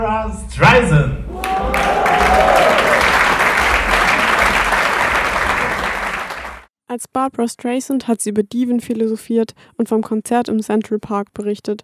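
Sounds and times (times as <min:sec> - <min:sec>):
speech: 0:00.3 - 0:01.2, 0:07.0 - 0:11.8
large audience applauding: 0:01.3 - 0:06.7.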